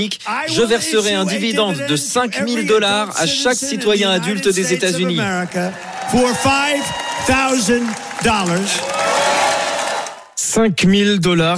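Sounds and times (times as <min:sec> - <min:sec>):
speech: 0:00.0 - 0:09.1, 0:10.6 - 0:11.5
crowd cheering and clapping: 0:04.0 - 0:10.4.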